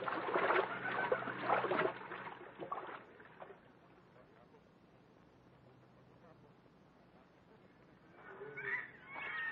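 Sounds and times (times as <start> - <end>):
water sloshing and splashing as people wade across a hip-deep river: 0.0 - 3.7.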